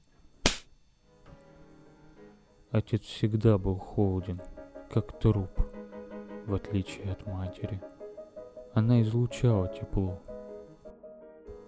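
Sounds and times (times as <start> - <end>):
single sharp loud slap: 0.4 - 0.7
speech: 2.7 - 5.7, 6.5 - 7.9, 8.7 - 10.3.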